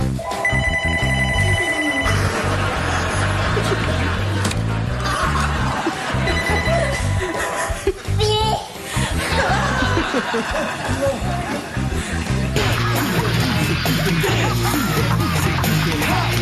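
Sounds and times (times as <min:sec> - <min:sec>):
telephone bell ringing: 0:00.2 - 0:02.7, 0:06.1 - 0:07.7
laughter: 0:02.1 - 0:08.1, 0:09.0 - 0:16.3.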